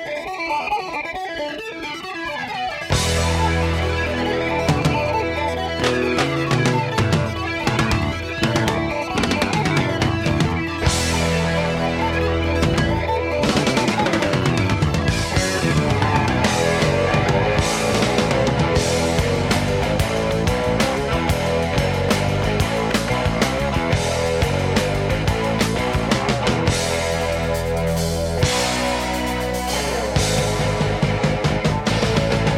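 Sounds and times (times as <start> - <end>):
fast bright effected electric guitar riff: 0.0 - 32.5
full rock band playing loud and dense: 0.0 - 32.5.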